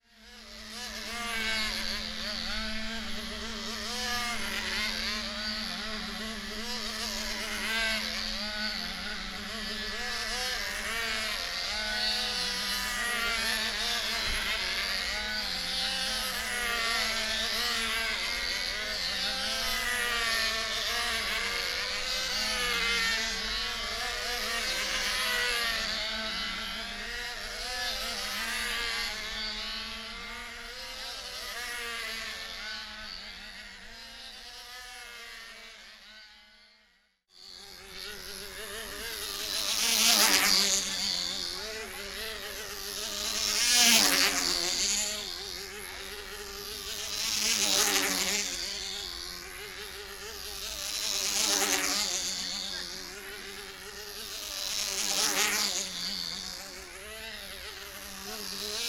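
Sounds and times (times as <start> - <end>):
control line model aircraft engine: 0.0 - 58.8.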